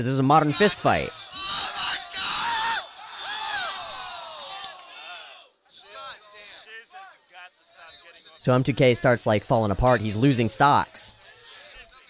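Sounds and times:
speech: 0.0s - 1.2s, 8.4s - 11.2s
crowd cheering at a competitive video game match: 0.0s - 12.0s
people whooping and shouting: 0.6s - 6.0s.

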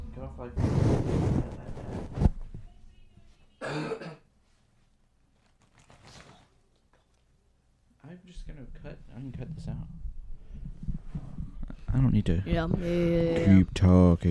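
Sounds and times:
speech: 0.4s - 0.8s, 8.5s - 10.0s, 12.0s - 14.2s
person coughing: 3.6s - 4.3s
throat clearing: 3.6s - 4.3s.

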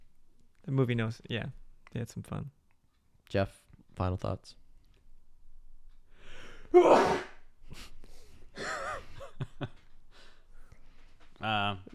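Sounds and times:
speech: 0.7s - 2.6s, 3.3s - 4.6s, 6.7s - 7.9s, 9.6s - 9.8s, 11.4s - 11.9s
sneeze: 6.8s - 7.4s.

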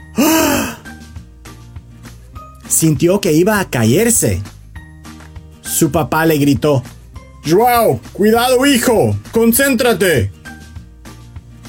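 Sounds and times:
boy gasping after looking down from high up in a tree: 0.0s - 0.9s
speech: 2.7s - 4.6s, 5.7s - 10.4s.

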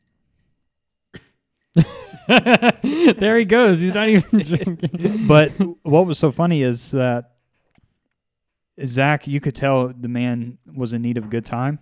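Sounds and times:
person coughing: 1.1s - 2.2s, 4.8s - 5.8s
harsh hacking cough: 1.1s - 2.3s, 4.3s - 5.8s
laughter: 1.8s - 6.1s
speech: 1.8s - 7.3s, 8.8s - 11.8s.

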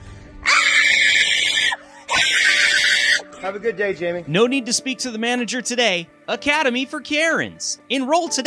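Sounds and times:
woman screaming furiously: 0.4s - 3.3s
speech: 3.5s - 8.4s.

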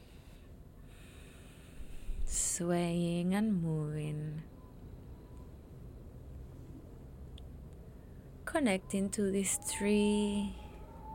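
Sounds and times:
soft airy breath: 0.0s - 2.4s
speech: 2.3s - 4.5s, 8.6s - 10.6s.

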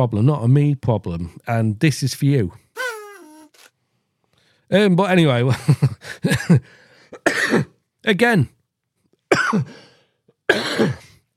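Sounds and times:
speech: 0.0s - 2.6s, 4.7s - 8.6s, 9.3s - 9.8s, 10.5s - 11.0s
person coughing: 7.2s - 7.7s, 9.3s - 9.7s, 10.5s - 11.2s.

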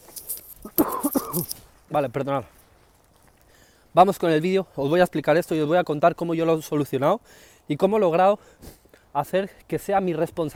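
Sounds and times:
dry coughs: 0.6s - 1.6s
speech: 1.4s - 2.6s, 3.9s - 10.5s.

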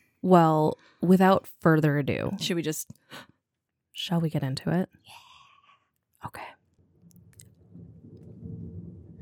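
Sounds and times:
speech: 0.2s - 3.3s, 4.0s - 5.2s, 6.2s - 6.6s
thunder rumbling: 7.5s - 9.2s.

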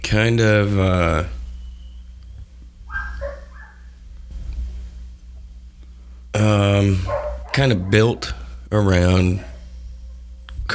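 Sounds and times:
low rumble: 0.0s - 10.7s
speech: 0.1s - 1.4s, 6.4s - 9.5s
dog barking and yipping: 2.9s - 3.9s, 7.0s - 8.3s.

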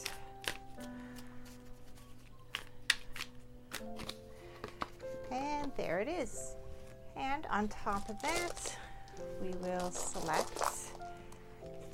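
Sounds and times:
tarot cards being shuffled: 0.0s - 5.8s, 7.8s - 11.4s
soft steady musical hum: 0.0s - 11.9s
speech: 5.8s - 6.6s, 7.4s - 10.8s.

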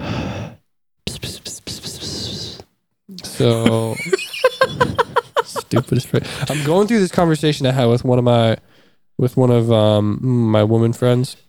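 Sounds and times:
loud breathing into a microphone: 0.0s - 0.6s, 1.9s - 2.7s, 4.6s - 7.0s, 8.6s - 9.1s
speech: 3.4s - 4.3s, 5.7s - 11.4s
laughter: 3.4s - 7.2s.

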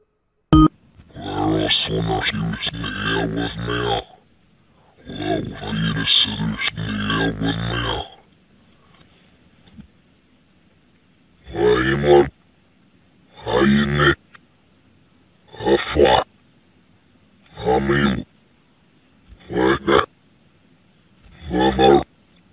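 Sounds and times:
deep distorted demonic voice played backwards over a phone line: 1.1s - 4.2s, 5.0s - 8.2s, 11.5s - 12.3s, 13.4s - 14.2s, 15.5s - 16.3s, 17.5s - 18.3s, 19.3s - 20.1s, 21.3s - 22.1s.

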